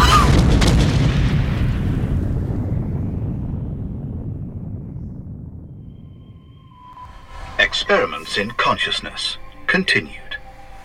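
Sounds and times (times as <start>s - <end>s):
bomb detonating in the basement of a manufacturing plant: 0.0s - 8.2s
speech: 7.9s - 10.2s.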